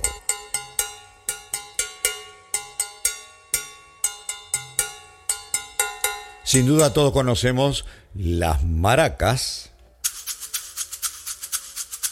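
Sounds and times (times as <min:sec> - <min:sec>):
cowbell struck rhythmically: 0:00.0 - 0:07.4
speech: 0:06.5 - 0:09.7.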